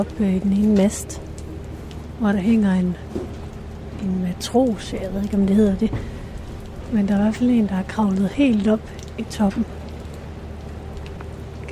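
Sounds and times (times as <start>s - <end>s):
speech: 0.0s - 1.3s, 2.2s - 3.4s, 4.0s - 6.2s, 6.9s - 9.8s
rain pattering on a huge sailing ship with masts: 0.0s - 11.7s.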